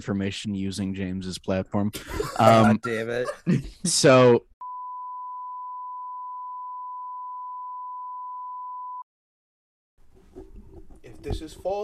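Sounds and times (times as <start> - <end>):
speech: 0.0 - 4.5, 11.2 - 11.8
laughter: 1.9 - 3.9
censor beep, steady pure mid-pitched electronic tone: 4.6 - 9.0.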